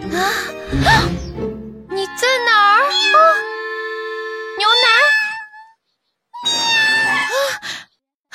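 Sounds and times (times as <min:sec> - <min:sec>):
speech: 0:00.1 - 0:01.2
cat meowing: 0:02.8 - 0:03.6, 0:04.6 - 0:05.8, 0:06.4 - 0:07.6.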